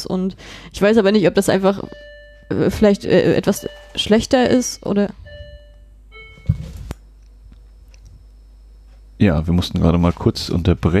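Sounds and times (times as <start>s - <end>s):
speech: 0.0s - 5.2s, 9.2s - 10.9s
two-tone doorbell chime rung by a postman: 1.8s - 6.8s.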